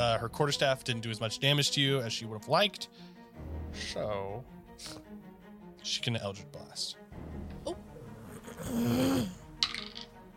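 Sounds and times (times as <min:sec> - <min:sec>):
speech: 0:00.1 - 0:07.8, 0:08.6 - 0:09.4
die clattering across a tabletop: 0:09.6 - 0:10.1.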